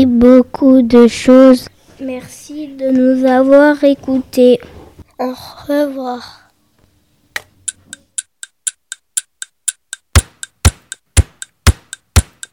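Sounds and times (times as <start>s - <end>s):
speech: 0.0s - 6.4s
clock ticking: 7.7s - 12.5s.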